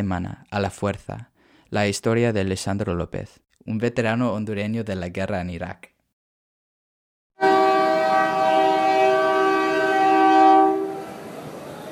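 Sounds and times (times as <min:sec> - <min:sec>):
speech: 0:00.0 - 0:05.9
freight train horn blaring on the railway to the Guatemalan border: 0:07.4 - 0:11.9.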